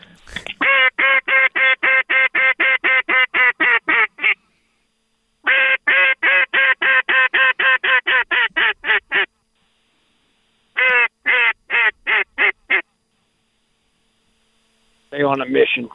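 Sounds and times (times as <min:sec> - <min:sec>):
duck call blown at passing ducks: 0:00.6 - 0:04.4, 0:05.4 - 0:09.3, 0:10.8 - 0:12.8
speech: 0:15.3 - 0:15.9.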